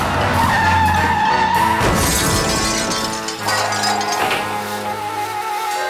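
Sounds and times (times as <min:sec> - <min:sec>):
car tires screeching in a long skid: 0:00.0 - 0:05.0
car crashing into a lamppost with crunching impact: 0:01.8 - 0:04.8
metallic clatter: 0:02.0 - 0:04.8
tinkling debris: 0:02.0 - 0:05.7.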